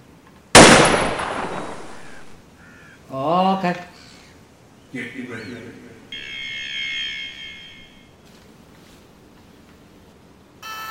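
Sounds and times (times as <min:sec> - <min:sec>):
cheap plastic toy gun firing a bang: 0:00.6 - 0:01.9
speech: 0:03.1 - 0:03.9.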